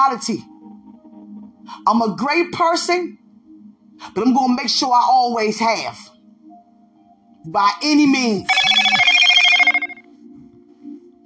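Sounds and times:
speech: 0:00.0 - 0:00.5, 0:01.7 - 0:03.2, 0:04.0 - 0:06.2, 0:07.4 - 0:09.0
phone ringing: 0:08.5 - 0:10.1.

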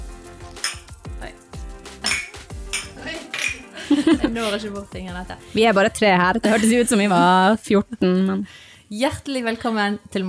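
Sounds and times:
glasses clinking together in a toast: 0:00.6 - 0:01.0, 0:02.0 - 0:03.7
laughter: 0:03.7 - 0:04.8, 0:06.4 - 0:07.4
speech: 0:04.0 - 0:10.2.

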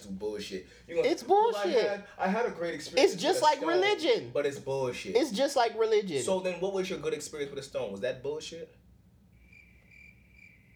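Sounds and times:
speech: 0:00.0 - 0:08.8
crickets chirping: 0:09.3 - 0:10.7.

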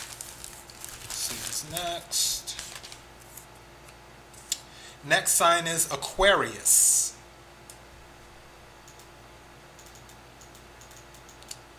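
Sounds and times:
speech: 0:01.6 - 0:02.5, 0:05.0 - 0:06.9
computer mouse clicking: 0:08.8 - 0:09.1, 0:09.8 - 0:11.7.

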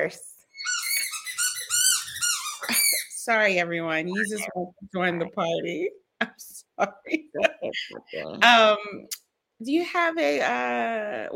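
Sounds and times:
speech: 0:00.0 - 0:00.3, 0:02.7 - 0:11.3
dog squeaking and whining: 0:00.5 - 0:03.2, 0:04.2 - 0:04.5
laughter: 0:07.0 - 0:08.4.

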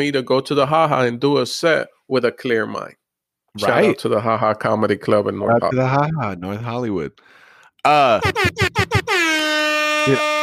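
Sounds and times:
speech: 0:00.0 - 0:03.0, 0:03.6 - 0:09.2, 0:10.0 - 0:10.3
loud air horn blasting: 0:08.2 - 0:10.4.

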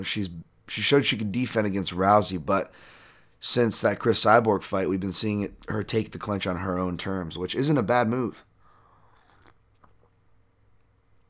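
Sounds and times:
speech: 0:00.0 - 0:08.5
low hum: 0:00.0 - 0:11.2
person sipping coffee: 0:08.7 - 0:10.2.

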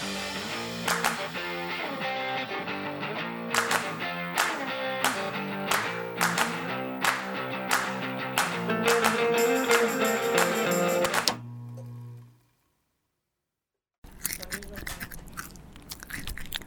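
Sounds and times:
music: 0:00.0 - 0:11.4
crunchy chewing: 0:14.0 - 0:16.6.

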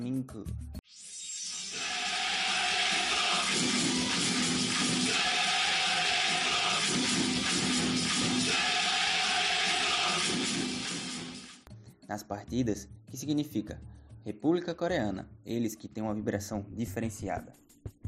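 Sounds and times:
speech: 0:00.0 - 0:01.1, 0:12.1 - 0:18.0
stadium crowd of football fans chanting in unison: 0:01.8 - 0:11.5.

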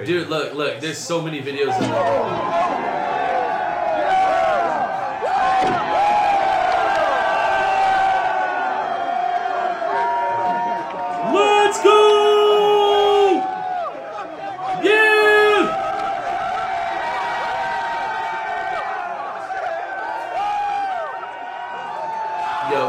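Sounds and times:
speech: 0:00.0 - 0:03.1
large crowd roaring and cheering: 0:01.5 - 0:22.8
individual shouts and whoops: 0:01.8 - 0:22.8
person shouting over the noise: 0:11.2 - 0:13.5, 0:14.8 - 0:15.8.

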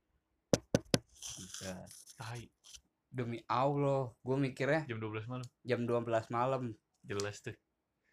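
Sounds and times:
sharp knocks on wood: 0:00.6 - 0:01.1
speech: 0:01.6 - 0:07.6.

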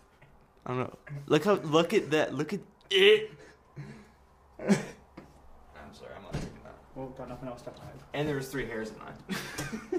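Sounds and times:
speech: 0:00.7 - 0:04.0, 0:04.6 - 0:05.0, 0:07.0 - 0:09.9
person coughing: 0:04.6 - 0:05.0
laughter: 0:09.2 - 0:09.9.

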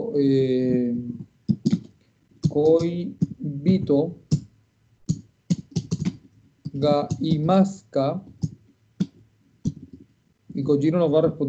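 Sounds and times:
speech: 0:00.1 - 0:01.8, 0:02.6 - 0:04.2, 0:06.8 - 0:08.3, 0:10.6 - 0:11.4
keystrokes on a computer keyboard typing a question: 0:01.5 - 0:04.4, 0:05.0 - 0:07.6, 0:08.2 - 0:10.0.

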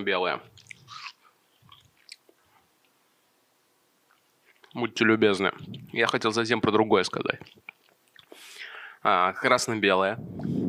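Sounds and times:
speech: 0:00.0 - 0:00.6, 0:04.7 - 0:07.6, 0:09.0 - 0:10.6
wet chewing of watermelon: 0:00.5 - 0:03.0, 0:04.1 - 0:04.8, 0:07.0 - 0:08.4.

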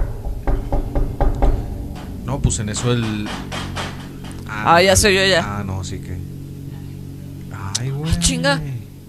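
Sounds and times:
firm knocks on a door as a sound effect: 0:00.0 - 0:04.4
low hum: 0:00.0 - 0:09.0
speech: 0:02.5 - 0:03.7, 0:04.6 - 0:06.3, 0:08.0 - 0:08.7.

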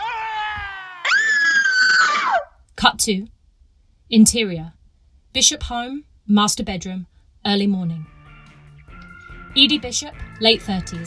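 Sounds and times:
woman screaming in horror: 0:00.0 - 0:02.5
speech: 0:02.8 - 0:03.4, 0:04.1 - 0:08.1, 0:09.5 - 0:11.0.

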